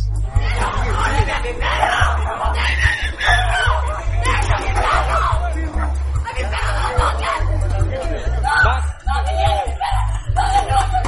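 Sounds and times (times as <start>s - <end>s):
dense noisy background: 0.0s - 11.0s
laughter: 0.2s - 11.0s
woman shrieking from a balcony: 8.5s - 11.0s.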